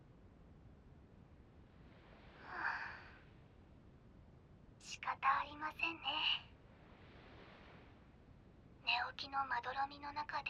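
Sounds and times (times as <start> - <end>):
faint hiss: 0.0 - 10.4
soft slow calm breath over a telephone: 2.0 - 3.3
speech: 4.9 - 6.5, 9.1 - 10.4.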